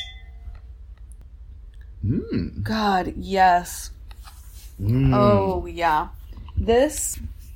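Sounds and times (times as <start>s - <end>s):
wine glasses holding cabernet clinking in a toast: 0.0s - 0.6s
speech: 2.0s - 4.0s, 4.8s - 7.4s.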